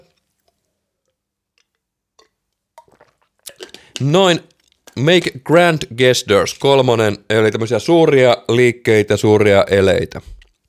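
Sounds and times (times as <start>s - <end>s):
person sipping water: 0.0s - 5.0s
slurping and swallowing water: 1.6s - 5.0s
speech: 4.0s - 10.4s.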